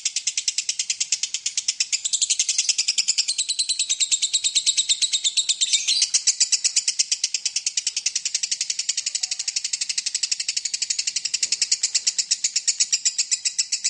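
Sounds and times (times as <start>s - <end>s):
lovebird ngekek song: 0.0s - 13.8s.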